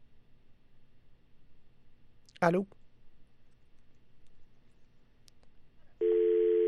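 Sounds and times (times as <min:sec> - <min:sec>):
faint hiss: 0:00.0 - 0:06.6
speech: 0:02.4 - 0:02.8
telephone line tone on a dead call: 0:06.0 - 0:06.6.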